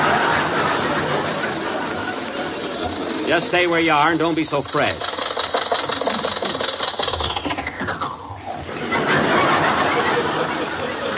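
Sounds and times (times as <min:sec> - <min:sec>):
laughter: 0:00.0 - 0:05.1, 0:08.6 - 0:11.1
old jalopy car engine clattering and rattling: 0:00.0 - 0:08.1
speech: 0:03.3 - 0:05.1.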